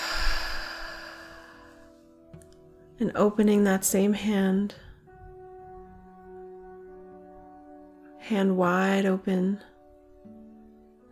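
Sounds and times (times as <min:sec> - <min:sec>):
slow deep breath drawn in during a guided self-care exercise: 0:00.0 - 0:01.9
steady hushed tonal background: 0:00.0 - 0:11.1
speech: 0:03.0 - 0:04.8, 0:08.3 - 0:09.7.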